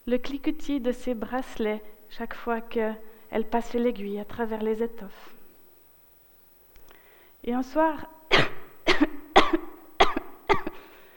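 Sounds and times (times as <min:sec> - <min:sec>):
speech: 0:00.1 - 0:05.4, 0:07.4 - 0:09.7
woman giving small coughs: 0:08.3 - 0:10.9.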